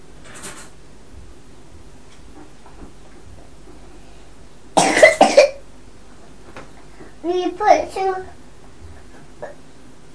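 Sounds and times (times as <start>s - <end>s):
child coughing: 4.8s - 5.6s
speech: 7.3s - 8.4s.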